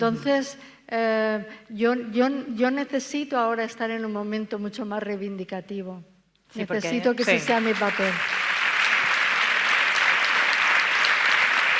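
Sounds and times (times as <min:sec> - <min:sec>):
speech: 0:00.0 - 0:08.5
audience applause: 0:07.2 - 0:11.7.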